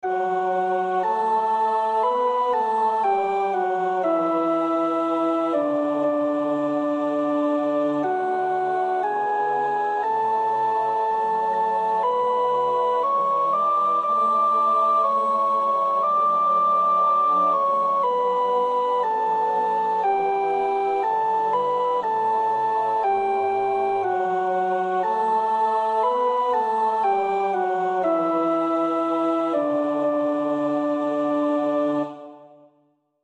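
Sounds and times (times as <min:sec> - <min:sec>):
soprano voice singing: 0:00.2 - 0:32.6.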